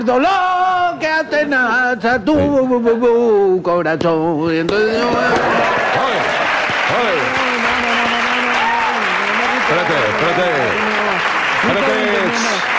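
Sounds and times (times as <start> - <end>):
speech: 0.0 - 7.4, 9.7 - 10.9, 11.6 - 12.7
large audience applause: 5.2 - 12.7
voices calling and cheering: 5.2 - 12.7.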